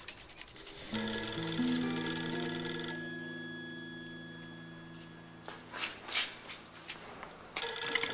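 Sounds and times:
telephone ringing: 0.9s - 5.9s, 7.6s - 8.1s.

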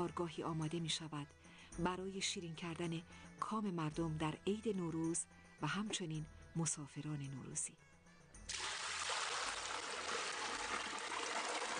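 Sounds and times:
speech: 0.0s - 7.9s
water pouring into a large cauldron in a sweets workshop in Shiraz Iran: 8.5s - 11.7s.

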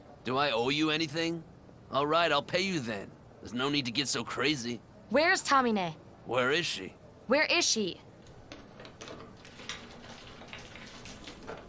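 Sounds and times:
speech: 0.2s - 8.1s
gasoline splashing and trickling: 9.4s - 11.6s.

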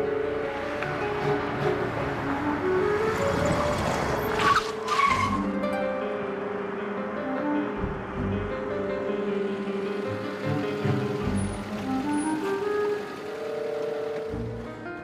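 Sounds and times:
car engine roaring while speeding through the city: 0.1s - 14.9s
car tires squealing in a skid: 0.9s - 5.6s, 10.1s - 14.2s.

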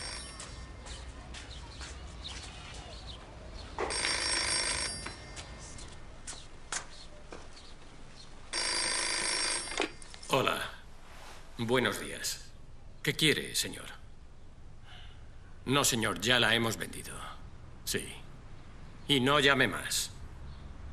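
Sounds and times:
telephone bell ringing in a house: 0.0s - 1.0s, 3.8s - 6.0s, 8.5s - 10.7s
faint noise: 0.0s - 20.9s
speech: 11.6s - 12.4s, 13.0s - 14.0s, 15.7s - 18.2s, 19.1s - 20.2s.

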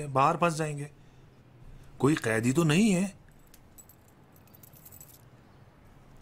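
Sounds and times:
speech: 0.0s - 1.0s, 2.0s - 3.2s
bunch of keys jangling as they are handed over: 3.2s - 6.2s.

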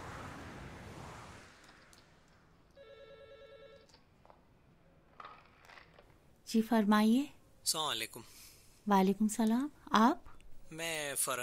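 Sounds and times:
wash of noise: 0.0s - 2.6s
telephone ringing in a buzzy electronic burst: 2.8s - 4.1s
speech: 6.5s - 11.4s.

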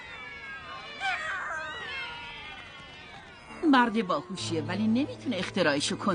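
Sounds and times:
cats meowing and yowling as they flee from a house: 0.0s - 4.5s
speech: 3.6s - 6.1s.

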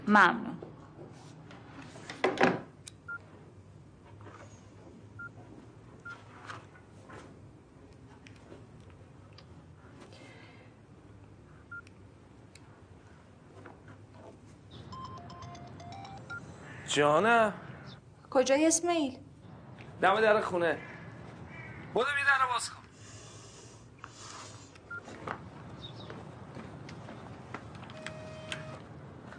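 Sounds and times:
speech: 0.1s - 0.5s, 17.0s - 17.6s, 18.3s - 19.2s, 20.0s - 20.9s, 22.0s - 22.8s
telephone keypad tones as a phone is dialled: 14.9s - 16.5s, 27.9s - 28.8s.

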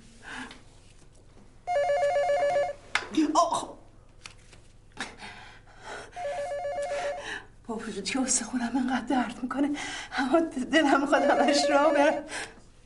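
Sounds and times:
telephone ringing with a warbling electronic trill: 1.7s - 2.8s, 6.2s - 7.3s, 10.9s - 12.3s
speech: 8.0s - 12.5s.

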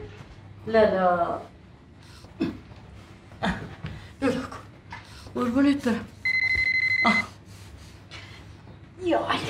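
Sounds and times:
speech: 0.6s - 1.5s, 5.4s - 6.1s, 7.0s - 7.3s, 9.0s - 9.4s
telephone ringing with electronic beeps: 6.2s - 7.3s.

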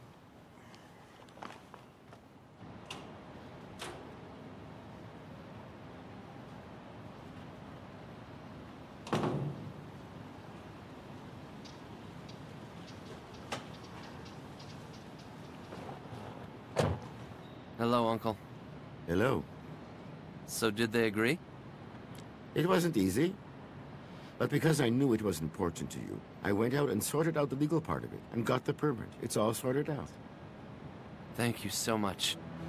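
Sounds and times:
low steady hum: 0.0s - 32.6s
footsteps walking to a door: 1.1s - 2.3s
door opening with a clunk and rattle: 9.0s - 9.8s, 15.7s - 17.3s
speech: 17.8s - 18.4s, 19.1s - 19.5s, 20.6s - 21.5s, 22.6s - 23.4s, 24.4s - 30.2s, 31.4s - 32.6s.

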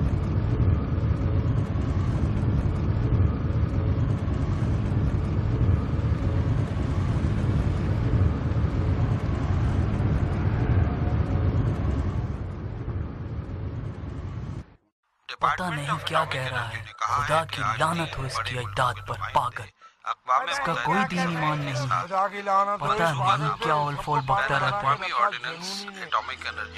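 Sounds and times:
car deep engine rumble heard from inside the vehicle: 0.0s - 14.8s
speech: 15.4s - 26.7s.

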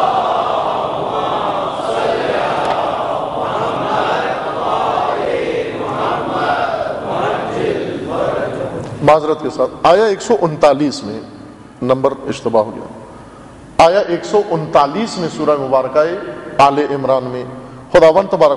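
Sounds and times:
large audience chanting salawat in unison: 0.0s - 8.8s
speech: 9.1s - 13.0s, 13.8s - 18.5s.

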